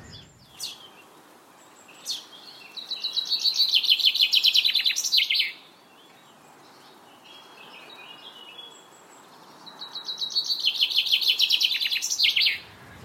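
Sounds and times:
chaffinch song: 0.0s - 13.0s.

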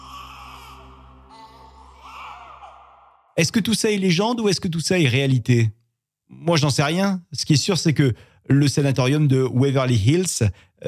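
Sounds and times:
baby crying with high-pitched wails: 0.0s - 3.3s
speech: 3.4s - 10.8s.

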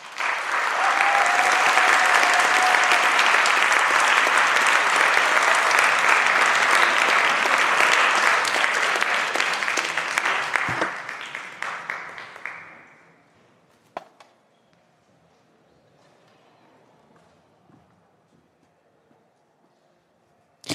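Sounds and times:
crowd applauding for a speaker being introduced: 0.0s - 13.0s.

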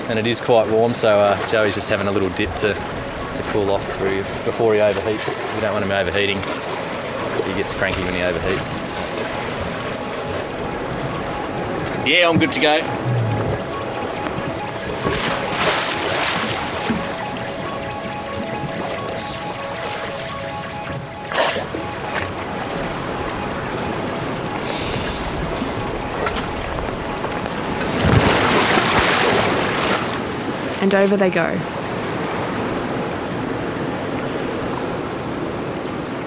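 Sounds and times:
water sloshing and slapping against a boat hull: 0.0s - 36.2s
speech: 0.1s - 6.8s, 7.5s - 9.4s, 12.0s - 13.1s, 30.9s - 31.8s.

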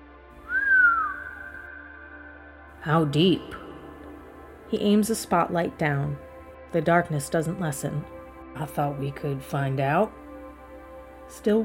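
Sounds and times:
soft low human whistle: 0.5s - 2.5s
speech: 2.8s - 3.6s, 4.7s - 10.2s, 11.3s - 11.6s.

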